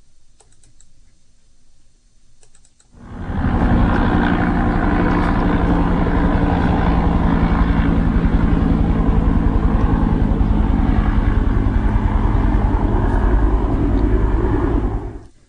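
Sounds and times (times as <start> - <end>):
helicopter flying overhead: 2.9 - 15.4.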